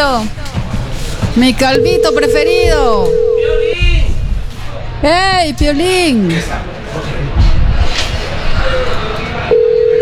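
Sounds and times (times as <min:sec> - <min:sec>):
crowd noise: 0:00.0 - 0:10.0
speech: 0:00.1 - 0:00.6, 0:01.4 - 0:03.9, 0:05.0 - 0:06.7
telephone line tone on an unanswered call with no signal: 0:01.8 - 0:03.8, 0:09.5 - 0:10.0.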